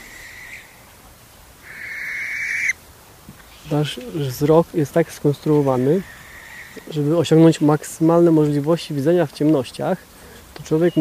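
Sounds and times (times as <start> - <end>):
barn owl giving harsh hissing screeches: 0.0 - 0.8, 1.6 - 2.8, 5.5 - 7.0
speech: 3.7 - 6.2, 6.8 - 10.1, 10.7 - 11.0.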